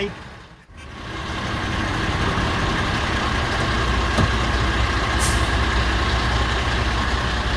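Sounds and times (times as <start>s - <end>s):
17-tonne automatic fire engine diesel engine pulling away: 0.1s - 7.5s
fire engine air brakes releasing: 5.2s - 5.6s.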